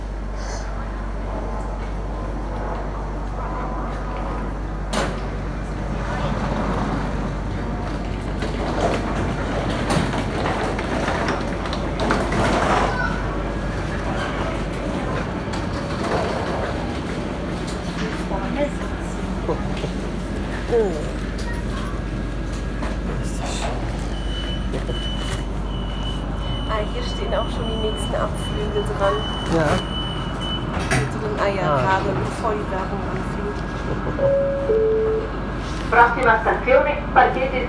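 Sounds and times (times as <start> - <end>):
automated train rolling very slowly and braking at station: 0.0 - 37.2
thin high tone: 34.2 - 35.4.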